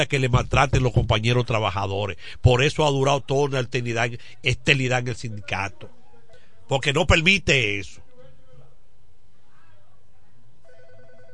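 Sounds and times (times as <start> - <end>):
speech: 0.0 - 6.0, 6.7 - 8.0
low steady noise: 0.0 - 11.3
telephone ringing with an incoming call to a radio call-in program: 10.6 - 11.3.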